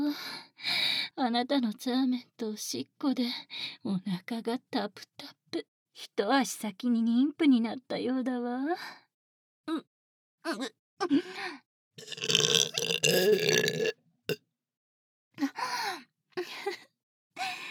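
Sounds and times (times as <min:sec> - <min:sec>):
speech: 0:01.2 - 0:09.0, 0:09.7 - 0:14.4, 0:15.4 - 0:16.8
person burping with voiced burps and long belch: 0:12.0 - 0:13.9.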